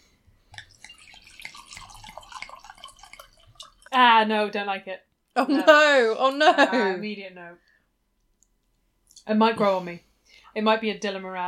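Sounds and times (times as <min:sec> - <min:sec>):
red wine being poured into a glass: 0:00.6 - 0:04.0
speech: 0:04.0 - 0:07.7, 0:09.2 - 0:11.4.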